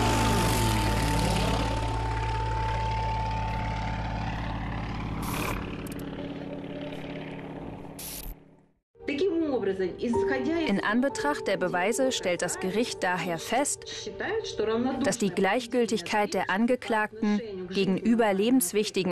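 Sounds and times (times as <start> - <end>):
racing airplane propeller engine roaring while flying a course between pylons: 0.0 - 8.6
speech: 9.7 - 19.0.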